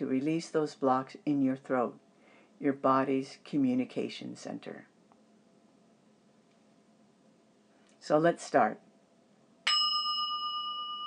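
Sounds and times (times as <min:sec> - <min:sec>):
speech: 0:00.0 - 0:02.0, 0:02.6 - 0:04.9, 0:08.0 - 0:08.8
bright bell struck to begin a new moon meditation: 0:09.7 - 0:11.0.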